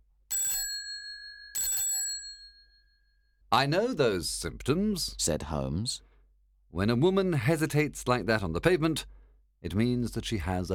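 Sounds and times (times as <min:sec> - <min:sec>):
doorbell ringing with bright metallic chimes: 0:00.3 - 0:03.2
speech: 0:03.5 - 0:06.1, 0:06.7 - 0:10.7.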